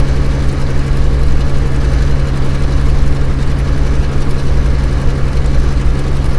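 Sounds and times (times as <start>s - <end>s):
aircraft engines heard from the right side of the cockpit: 0.0s - 6.3s.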